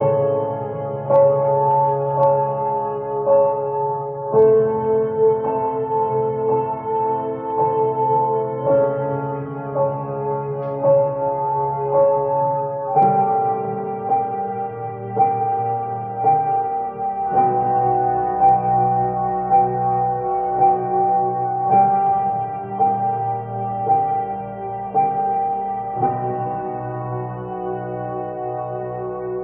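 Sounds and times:
sad tragic piano loop: 0.0s - 29.4s.

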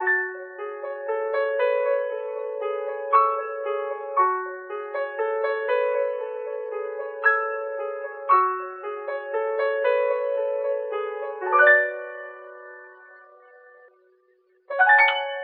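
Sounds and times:
sad piano loops: 0.0s - 15.4s.

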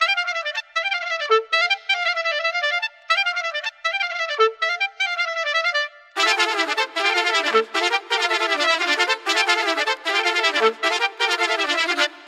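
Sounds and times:
oboe: 0.0s - 12.2s
horns: 0.1s - 12.2s.

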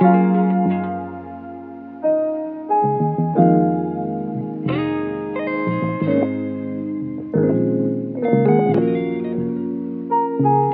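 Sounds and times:
guitar loop: 0.0s - 10.7s
piano loop: 0.0s - 10.7s.

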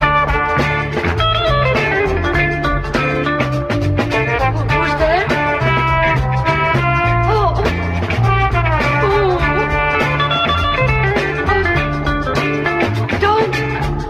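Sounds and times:
horns in phonk loops: 0.0s - 2.6s, 3.7s - 11.9s
guitar in phonk loops: 0.0s - 14.0s.

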